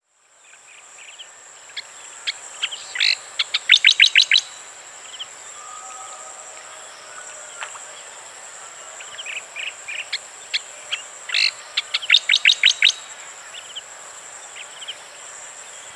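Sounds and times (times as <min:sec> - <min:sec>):
striated grassbird singing: 0:00.8 - 0:05.8, 0:09.0 - 0:13.9.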